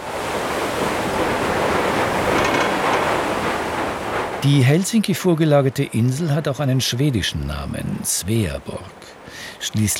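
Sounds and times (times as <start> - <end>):
ferry pushing through frozen sea ice off Helsinki Finland: 0.0 - 4.8
speech: 4.4 - 9.9.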